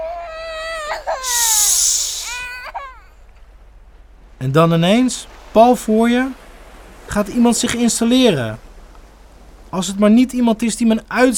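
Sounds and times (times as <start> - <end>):
speech: 1.0 - 2.0, 4.4 - 6.4, 7.1 - 8.6, 9.7 - 11.3
children screaming: 1.2 - 2.4.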